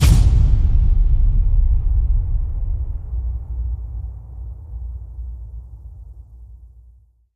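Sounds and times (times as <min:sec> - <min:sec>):
big warning gunshot hit: 0:00.0 - 0:04.2.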